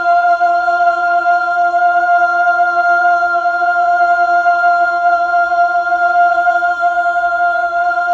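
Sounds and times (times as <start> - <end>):
Mellotron female choir sample: 0.0 - 8.1.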